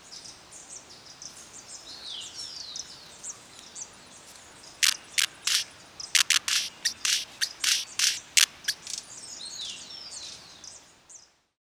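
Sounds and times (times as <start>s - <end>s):
Talamanca hummingbird Eugenes spectabilis uttering loud sharp high chip notes: 4.8s - 9.0s.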